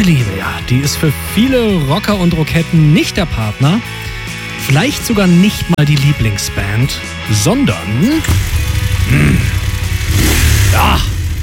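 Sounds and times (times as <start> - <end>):
speech: 0.0 - 4.0, 4.6 - 9.6
motorcycle engine revving: 7.5 - 11.4.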